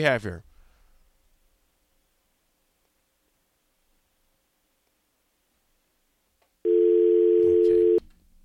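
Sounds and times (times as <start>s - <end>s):
speech: 0.0s - 0.5s
telephone busy tone on failed call to a call-in phone line: 6.7s - 8.0s.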